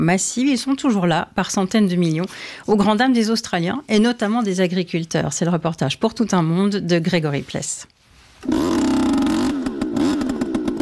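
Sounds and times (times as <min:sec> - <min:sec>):
speech: 0:00.0 - 0:08.9
leaf blower engine running: 0:08.4 - 0:10.8.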